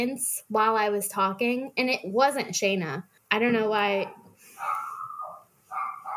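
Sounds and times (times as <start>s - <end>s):
speech: 0.0s - 4.8s
dog giving drawn-out whiny barks: 4.6s - 6.1s.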